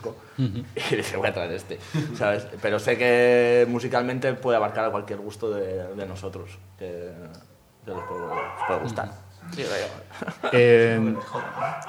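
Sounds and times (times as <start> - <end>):
speech: 0.0 - 11.8
dog giving a drawn-out whining bark: 8.0 - 9.0, 11.2 - 11.8.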